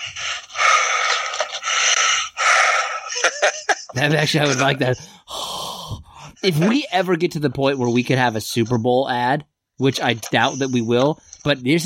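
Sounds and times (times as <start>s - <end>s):
heavy mouth breathing in long rasping breaths: 0.0s - 3.1s, 5.0s - 7.0s
laughter: 3.0s - 5.0s
speech: 3.4s - 5.3s, 5.9s - 11.8s.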